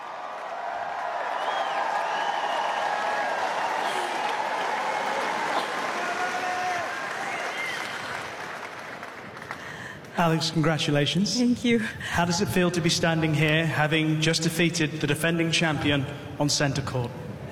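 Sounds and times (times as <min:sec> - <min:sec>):
tennis crowd shouting: 0:00.0 - 0:07.8
large tennis crowd clapping on Centre Court: 0:00.0 - 0:10.2
tennis crowd whistles: 0:01.4 - 0:02.9
speech: 0:10.2 - 0:17.2.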